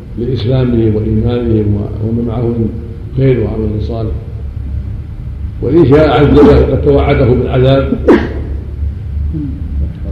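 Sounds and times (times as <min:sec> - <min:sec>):
low steady rumble: 0:00.0 - 0:10.1
speech: 0:00.2 - 0:04.3, 0:05.6 - 0:08.3, 0:09.3 - 0:09.6
person sneezing: 0:08.1 - 0:08.5.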